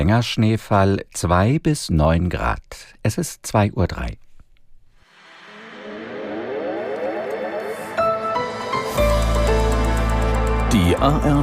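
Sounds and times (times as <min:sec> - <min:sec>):
speech: 0:00.0 - 0:04.2, 0:10.8 - 0:11.4
electronic radio news program opener jingle: 0:05.1 - 0:09.8.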